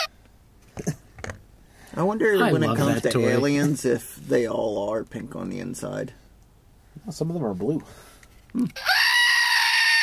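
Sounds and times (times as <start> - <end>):
speech: 0.8 - 1.0, 1.9 - 6.2, 7.0 - 8.9
goat screaming: 8.7 - 10.0.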